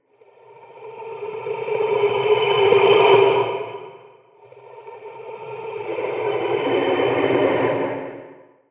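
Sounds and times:
reverberant horror monster roar growl: 1.1s - 8.5s.

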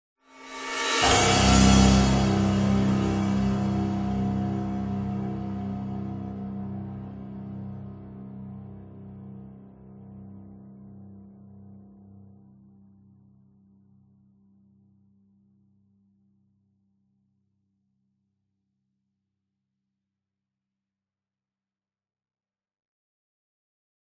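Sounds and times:
cinematic dramatic orchestral hit stab: 0.3s - 11.0s.

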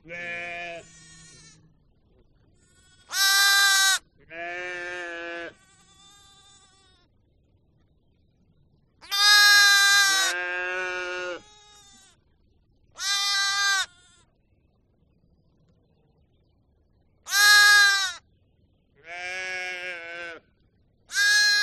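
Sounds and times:
sheep bleating: 0.1s - 1.7s, 2.7s - 7.1s, 9.1s - 12.2s, 13.0s - 14.2s, 17.3s - 18.2s, 19.0s - 20.4s, 21.1s - 21.6s.

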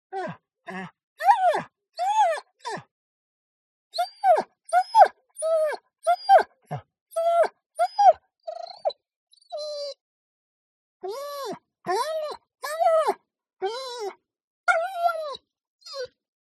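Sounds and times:
German Shorthaired Pointer whining: 1.2s - 2.8s, 4.0s - 6.5s, 7.1s - 10.0s, 11.0s - 16.2s.

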